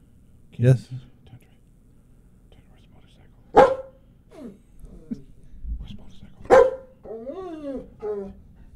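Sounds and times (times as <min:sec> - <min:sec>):
speech: 0:00.6 - 0:01.1
police K-9 dog barking: 0:03.5 - 0:04.6, 0:06.5 - 0:07.1
dog whining: 0:03.6 - 0:05.3, 0:06.5 - 0:08.5.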